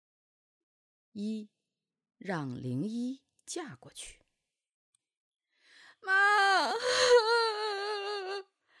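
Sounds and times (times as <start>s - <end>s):
speech: 1.2s - 1.6s, 2.2s - 4.2s, 6.0s - 7.5s
girl crying: 6.1s - 8.4s.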